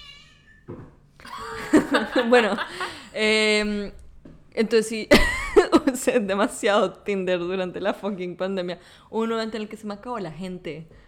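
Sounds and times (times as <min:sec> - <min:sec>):
cat meowing: 0:00.0 - 0:00.7
laughter: 0:01.2 - 0:03.1
speech: 0:02.2 - 0:04.0, 0:04.6 - 0:11.0.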